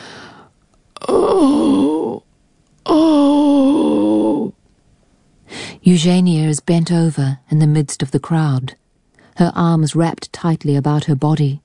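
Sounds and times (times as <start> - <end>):
woman's deep groan aboard a ship: 1.0 - 2.2, 2.9 - 4.6
speech: 1.3 - 1.8, 5.9 - 8.8, 9.4 - 11.6.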